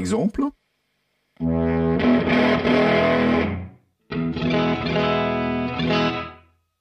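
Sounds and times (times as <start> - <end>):
speech: 0.0 - 0.6, 1.4 - 1.7
electric guitar through an amp pedal, clean to heavily overdriven: 1.4 - 6.5.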